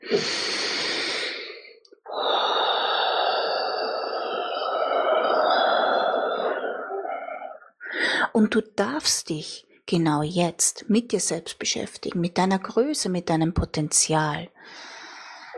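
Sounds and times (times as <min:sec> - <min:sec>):
deep breathing in and out: 0:00.0 - 0:08.4, 0:14.6 - 0:15.5
speech: 0:00.1 - 0:00.5, 0:08.5 - 0:14.9.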